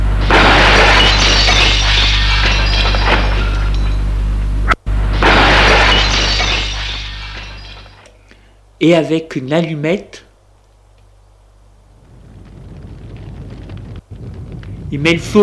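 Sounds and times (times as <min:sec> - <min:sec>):
glass attic window pane being smashed: 0:00.2 - 0:04.0, 0:05.1 - 0:08.1
speech: 0:08.8 - 0:10.3, 0:14.9 - 0:15.4.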